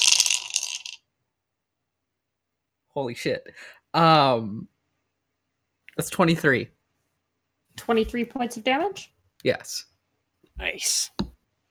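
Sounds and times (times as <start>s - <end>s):
dice tumbling across a hard tabletop: 0.0s - 1.0s
speech: 3.0s - 4.8s, 6.0s - 6.8s, 7.8s - 9.9s, 10.6s - 11.3s.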